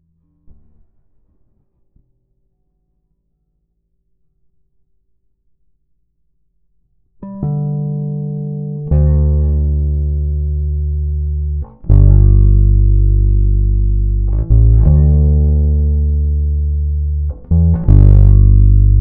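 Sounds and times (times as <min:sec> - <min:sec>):
bass riff: 0:07.2 - 0:18.9.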